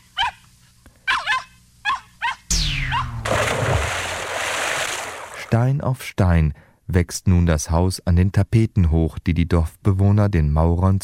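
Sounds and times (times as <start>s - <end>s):
young dog yelping barks: 0.0s - 0.5s, 1.1s - 2.5s
loud rushing splashing noise: 2.5s - 5.5s
speech: 5.5s - 11.0s.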